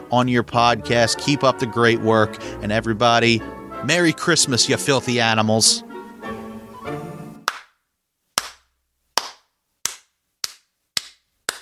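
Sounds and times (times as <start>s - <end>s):
speech: 0.1s - 6.4s
brief sustained tonal sound: 2.3s - 4.2s
loud sharp hand claps with tail: 7.4s - 7.8s, 8.4s - 11.6s.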